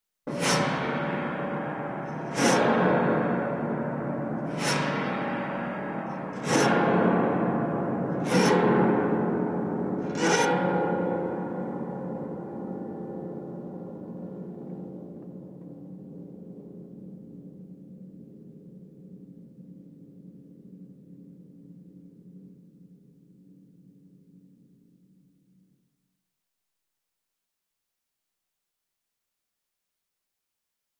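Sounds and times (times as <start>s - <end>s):
horrific steel scratching with echo: 0.3s - 12.8s.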